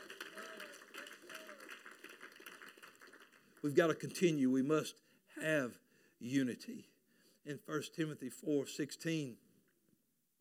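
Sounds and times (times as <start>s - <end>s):
audience clapping hands: 0.0s - 4.1s
speech: 3.6s - 9.4s.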